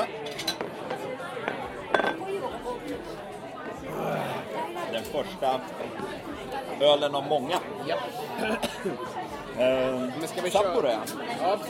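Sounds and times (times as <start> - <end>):
people chattering: 0.0 - 11.6
glasses clinking in a toast: 1.9 - 2.2
speech: 5.2 - 11.6.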